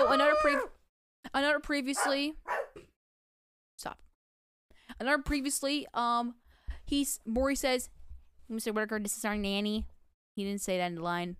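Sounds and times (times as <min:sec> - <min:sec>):
speech: 0:00.1 - 0:02.9, 0:03.8 - 0:04.0, 0:04.9 - 0:11.3
dog barking and yipping while being played with: 0:02.0 - 0:02.9.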